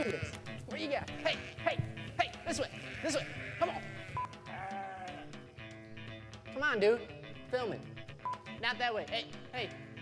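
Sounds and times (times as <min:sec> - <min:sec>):
speech: 0:00.0 - 0:01.9, 0:02.5 - 0:03.7, 0:06.7 - 0:07.9, 0:08.6 - 0:10.0
sheep bleating: 0:00.0 - 0:05.6.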